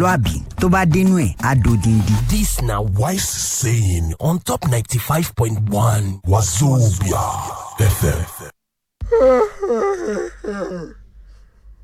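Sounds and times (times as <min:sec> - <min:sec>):
speech: 0:00.0 - 0:08.5, 0:09.1 - 0:11.0
person yawning loudly: 0:09.0 - 0:11.0.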